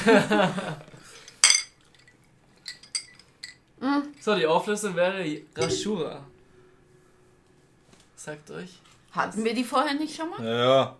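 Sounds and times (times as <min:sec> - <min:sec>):
speech: 0:00.0 - 0:00.9, 0:03.8 - 0:06.3, 0:08.2 - 0:10.9
drinking glasses clinking in a toast: 0:01.4 - 0:03.6, 0:05.6 - 0:06.8.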